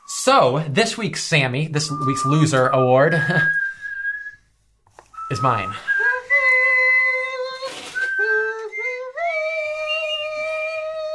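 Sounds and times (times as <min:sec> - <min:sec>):
speech: 0:00.2 - 0:03.6, 0:05.3 - 0:05.9
person whistling a tune: 0:01.8 - 0:04.5, 0:05.1 - 0:11.1.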